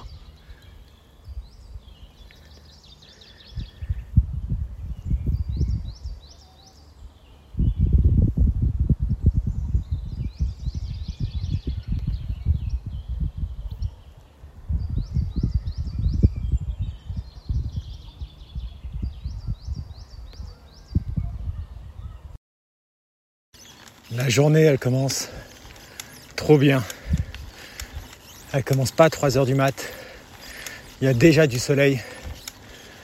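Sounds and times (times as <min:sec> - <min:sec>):
small birds singing bright repeated chirping phrases: 0:00.0 - 0:08.3, 0:09.2 - 0:22.4, 0:23.6 - 0:33.0
crunching and rustling: 0:23.6 - 0:33.0
speech: 0:24.3 - 0:25.5, 0:26.5 - 0:27.0, 0:28.5 - 0:30.0, 0:31.0 - 0:32.1.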